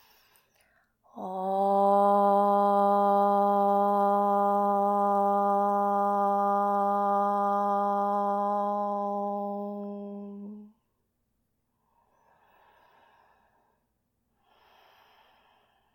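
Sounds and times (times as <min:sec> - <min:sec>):
brief breath before chanting: 0:00.0 - 0:01.0, 0:11.8 - 0:15.9
single sustained Om chanted by one voice to close a yoga practice: 0:01.1 - 0:10.8.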